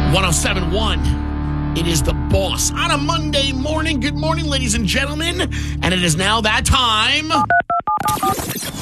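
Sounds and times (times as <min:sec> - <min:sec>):
speech: 0:00.1 - 0:07.6
touch-tone telephone dialing beeps: 0:07.4 - 0:08.5.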